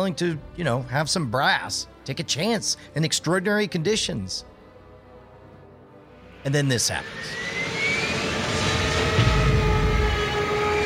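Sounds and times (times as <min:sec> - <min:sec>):
speech: 0:00.0 - 0:04.5, 0:06.4 - 0:07.6
military airplane engine drone off the coast of Spain: 0:05.3 - 0:10.8
sustained airplane engine whine: 0:06.2 - 0:10.8.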